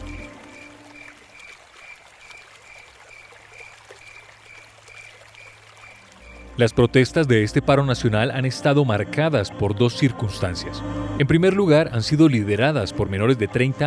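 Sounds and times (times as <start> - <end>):
crickets chirping: 0.0 - 7.0
river water flowing steadily: 0.0 - 7.4
speech: 6.6 - 13.8.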